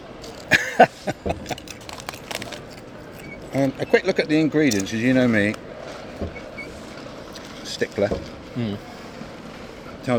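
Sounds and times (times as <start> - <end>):
speech: 0.8 - 1.2, 3.6 - 6.4, 7.8 - 8.9
person biting and chewing potato crisps: 1.5 - 3.7.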